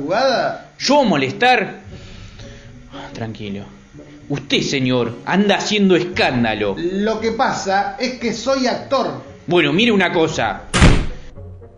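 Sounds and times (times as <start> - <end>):
speech: 0.0 - 2.0, 3.2 - 10.7
door slamming shut: 10.7 - 11.4.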